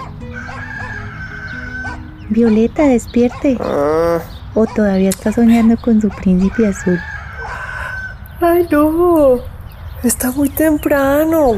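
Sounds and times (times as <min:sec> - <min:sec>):
rooster crowing: 0:00.0 - 0:02.6, 0:06.2 - 0:08.2
speech: 0:02.3 - 0:07.2, 0:08.6 - 0:11.5.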